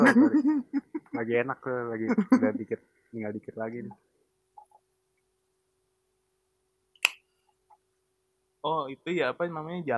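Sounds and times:
speech: 0.0 - 4.1, 8.6 - 9.9
soft wet mouth clicks from chewing food: 7.0 - 7.2.

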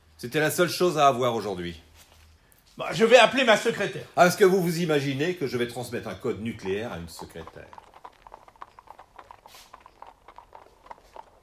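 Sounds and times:
speech: 0.2 - 1.9, 2.8 - 7.9
horse hooves of the Republican Guard crunching on courtyard gravel: 5.4 - 11.4.

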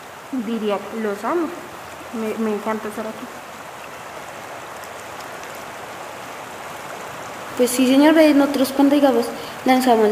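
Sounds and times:
river flowing over stones: 0.0 - 10.0
speech: 0.3 - 3.5, 7.6 - 10.0.

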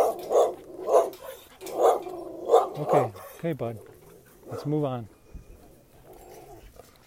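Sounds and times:
dog barking behind a fence: 0.0 - 3.4, 4.4 - 4.8
speech: 2.8 - 3.9, 4.5 - 5.2.

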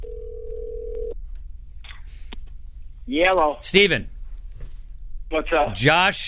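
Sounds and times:
steady telephone tone: 0.0 - 1.2
low hum: 0.0 - 6.2
speech: 3.1 - 4.2, 5.3 - 6.2.

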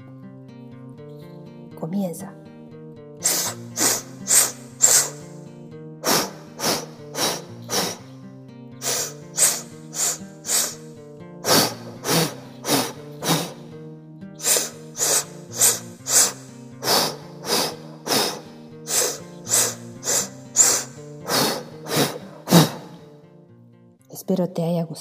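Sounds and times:
speech: 1.8 - 2.4, 24.4 - 24.9
rapid forceful breaths of a breathing exercise: 3.2 - 8.2, 8.8 - 13.8, 14.4 - 23.2.

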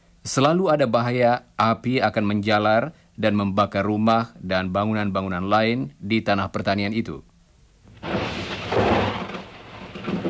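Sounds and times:
speech: 0.2 - 7.3
loud deep thunder rumbling: 8.0 - 10.2.

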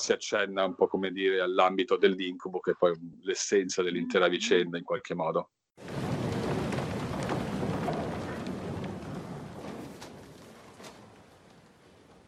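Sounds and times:
speech: 0.0 - 6.0
heavy afternoon rain in a film scene: 5.8 - 12.2.

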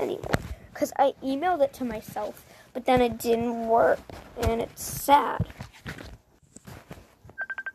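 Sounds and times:
rustling and handling noise: 0.0 - 7.5
speech: 0.1 - 6.1
phone ringing with bright electronic beeps: 7.4 - 7.7.

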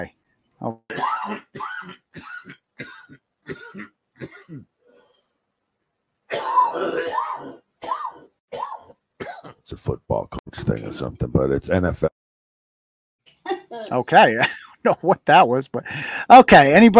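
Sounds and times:
speech: 0.0 - 1.6, 10.6 - 12.1, 13.9 - 16.9
person coughing: 0.9 - 4.7, 6.3 - 9.6
throat clearing: 0.9 - 4.7.

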